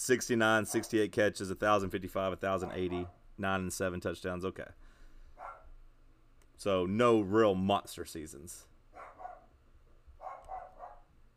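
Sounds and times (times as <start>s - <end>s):
speech: 0.0s - 4.9s, 6.6s - 8.7s
dog barking muffled: 0.6s - 1.0s, 2.6s - 3.2s, 5.4s - 5.8s, 8.9s - 9.6s, 10.2s - 11.2s.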